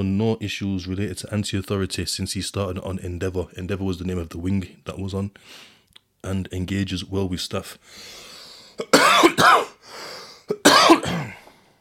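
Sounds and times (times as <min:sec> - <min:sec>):
speech: 0:00.0 - 0:09.6
sharp intake of breath: 0:05.4 - 0:05.8, 0:07.8 - 0:08.8, 0:09.8 - 0:10.5
person coughing: 0:08.8 - 0:09.8, 0:10.4 - 0:11.6.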